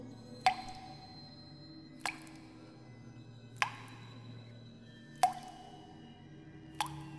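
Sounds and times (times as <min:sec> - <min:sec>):
water dripping from a tap in a supply closet: 0:00.4 - 0:01.0, 0:02.0 - 0:02.5, 0:03.6 - 0:04.1, 0:05.2 - 0:05.7, 0:06.8 - 0:07.1.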